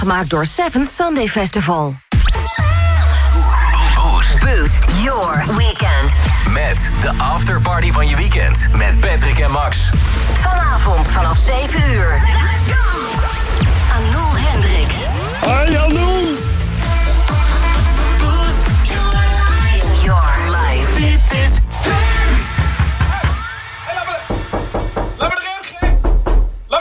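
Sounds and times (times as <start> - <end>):
speech: 0.0 - 2.6, 4.2 - 12.8
loud music: 2.1 - 25.3
dull bump against a studio door from someone leaning: 24.3 - 26.7.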